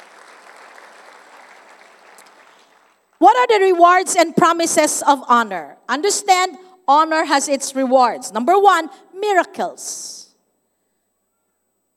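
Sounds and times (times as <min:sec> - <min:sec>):
audience clapping steadily in praise: 0:00.0 - 0:03.2
speech: 0:03.2 - 0:10.2.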